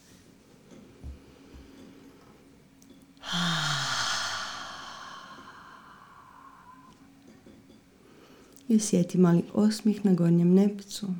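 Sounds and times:
deep breath during a guided breathing exercise: 3.2 - 7.1
speech: 8.7 - 11.1.

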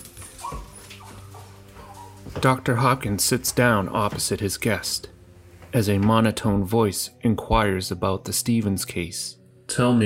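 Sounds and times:
dog whimpering with high-pitched whines: 0.3 - 2.3
speech: 2.4 - 5.1, 5.7 - 10.0.

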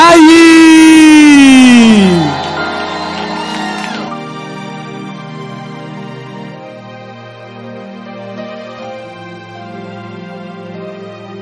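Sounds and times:
church audience shouting during a service: 0.0 - 4.2
church audience clapping: 0.0 - 4.9
church audience cheering during a service: 0.0 - 5.1.

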